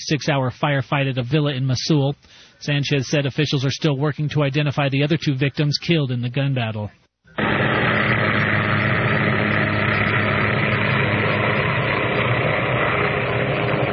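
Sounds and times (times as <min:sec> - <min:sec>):
speech: 0:00.0 - 0:07.6
helicopter engine and rotors roaring while landing in West Virginia: 0:07.4 - 0:13.9.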